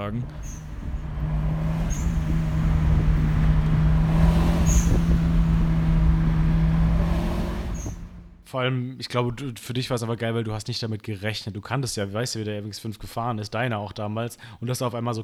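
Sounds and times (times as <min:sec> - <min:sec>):
speech: 0:00.0 - 0:00.7, 0:08.5 - 0:15.2
car driving on a road: 0:00.0 - 0:08.5
low car engine hum: 0:00.0 - 0:08.5.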